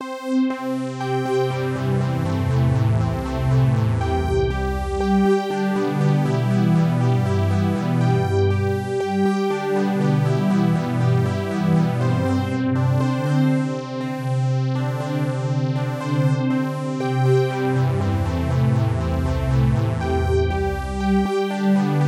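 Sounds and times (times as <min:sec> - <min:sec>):
synth: 0:00.0 - 0:22.0.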